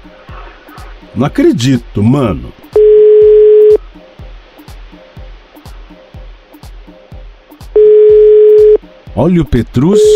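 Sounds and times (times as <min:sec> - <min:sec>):
faint regular low thumping beat: 0:00.0 - 0:10.1
speech: 0:01.1 - 0:02.6, 0:09.2 - 0:10.1
unanswered phone call ringing tone: 0:02.8 - 0:03.8, 0:07.8 - 0:08.8.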